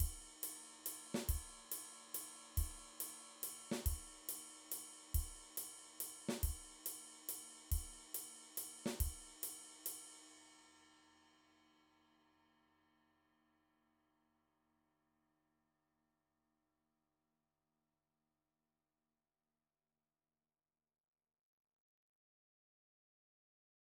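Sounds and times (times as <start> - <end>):
drum beats: 0.0 - 0.3, 1.1 - 1.7, 2.6 - 3.0, 3.7 - 4.2, 5.2 - 5.4, 6.3 - 6.8, 7.7 - 8.0, 8.9 - 9.3.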